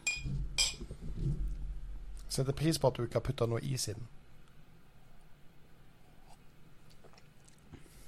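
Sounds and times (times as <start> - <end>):
glasses of whisky clinking in a toast: 0.0 - 0.8
speech: 2.4 - 4.2.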